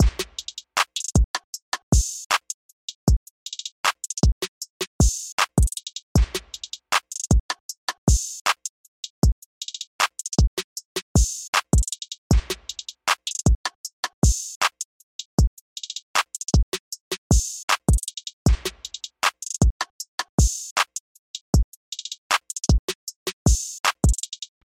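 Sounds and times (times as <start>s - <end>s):
drum loop: 0.0s - 2.4s, 4.0s - 8.4s, 11.2s - 14.5s, 15.4s - 20.7s, 22.0s - 24.4s.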